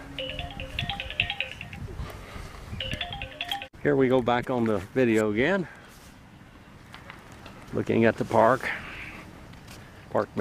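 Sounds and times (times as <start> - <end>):
phone ringing with a warbling electronic ringtone: 0.0 - 1.9, 2.8 - 3.7
speech: 3.8 - 5.8, 7.8 - 8.8, 10.1 - 10.3.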